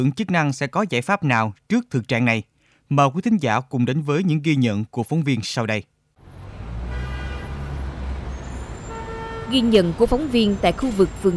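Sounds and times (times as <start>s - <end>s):
speech: 0.0s - 5.9s, 9.5s - 11.3s
bus and car engines droning in busy street traffic: 6.2s - 11.3s
faint horn toots: 6.8s - 8.0s, 8.8s - 9.8s.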